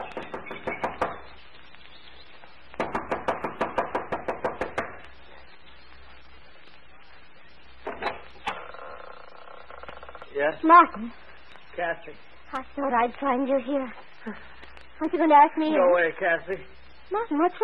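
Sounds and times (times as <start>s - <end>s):
impatient knocking on a wooden lodge front door: 0.0s - 1.2s, 2.8s - 4.9s
speech: 10.4s - 11.2s, 11.8s - 17.6s.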